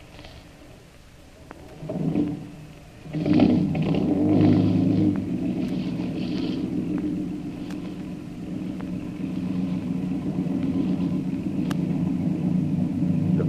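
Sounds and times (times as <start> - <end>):
lifeboat motor starting and running: 0.0 - 13.4.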